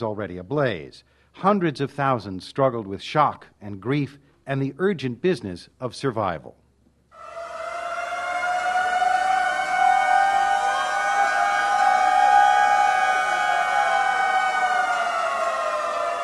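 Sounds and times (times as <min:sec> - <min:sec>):
speech: 0:00.0 - 0:06.6
memorial sirens wailing in San Francisco California on the earthquake anniversary: 0:07.2 - 0:16.2.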